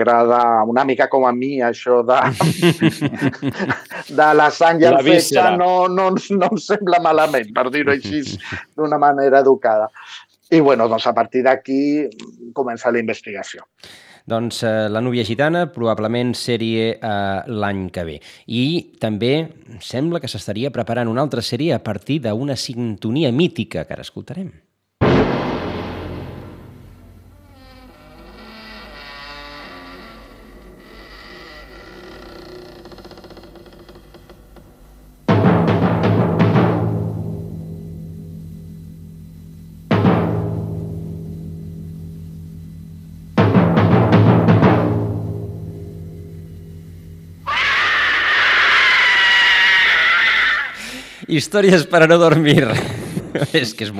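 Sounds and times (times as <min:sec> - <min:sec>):
speech: 0:00.0 - 0:24.7, 0:51.5 - 0:53.9
laughter: 0:02.2 - 0:08.8, 0:52.3 - 0:53.9
heavy drum booms in a horror TV theme: 0:25.0 - 0:27.4, 0:35.3 - 0:38.4, 0:39.9 - 0:41.9, 0:43.3 - 0:47.4
loud piercing scream: 0:27.3 - 0:33.0, 0:47.4 - 0:51.1
eerie wavering voices in a horror TV theme: 0:47.5 - 0:50.8.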